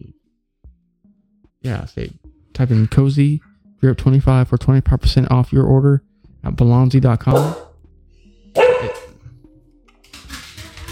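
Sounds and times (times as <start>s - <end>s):
speech: 1.6s - 7.6s
dog barking: 7.3s - 7.8s, 8.6s - 9.2s.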